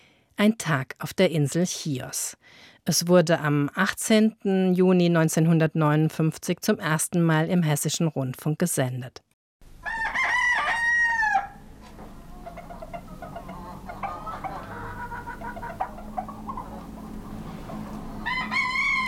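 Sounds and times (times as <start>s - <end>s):
speech: 0.4s - 9.2s
roosters crowing at dawn on the Greek island of Chios: 9.8s - 19.0s
chickens clucking: 11.7s - 19.0s
birdsong: 12.2s - 18.4s.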